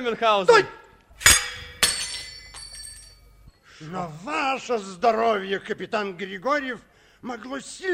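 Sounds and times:
speech: 0.0 - 1.3, 3.8 - 7.9
glass goblet holding a poisoned drink breaking: 1.2 - 3.5.

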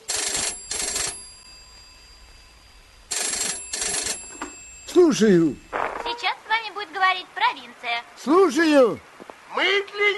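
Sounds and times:
telephone bell ringing: 0.0 - 6.2
speech: 5.1 - 5.6, 6.8 - 10.1.

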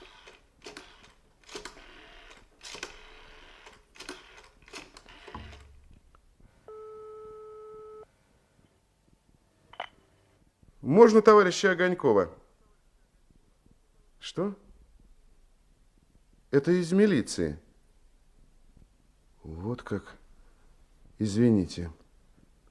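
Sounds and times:
steady ringback tone on a phone line: 6.7 - 8.0
speech: 10.9 - 12.4, 14.4 - 14.6, 16.5 - 17.6, 19.9 - 20.2, 21.2 - 22.0.

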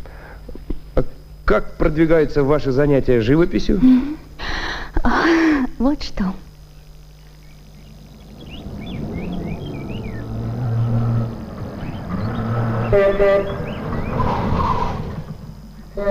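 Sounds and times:
speech: 0.9 - 4.2, 5.8 - 6.5
birds chirping: 6.5 - 16.0
car engine rumbling approaching a gate: 6.8 - 16.0.

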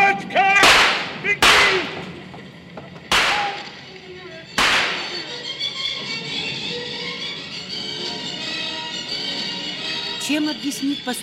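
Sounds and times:
gunshots: 0.6 - 2.1, 3.1 - 3.8, 4.6 - 5.3
speech: 10.3 - 11.2.

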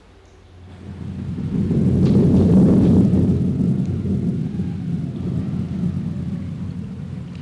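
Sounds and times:
deep rolling thunder rumble: 0.6 - 7.4
steady rain hissing: 0.6 - 7.4.

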